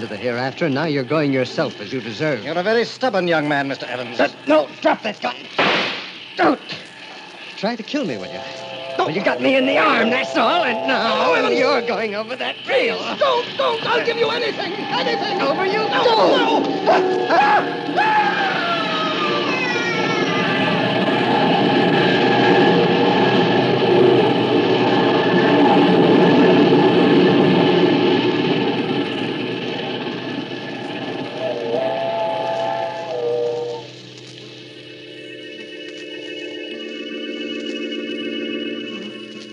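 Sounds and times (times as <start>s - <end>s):
speech: 0.0s - 5.7s, 6.4s - 6.8s, 7.6s - 18.2s
steam train thundering past: 0.0s - 39.5s
steam train whistle blasts: 8.0s - 23.4s, 30.9s - 34.0s.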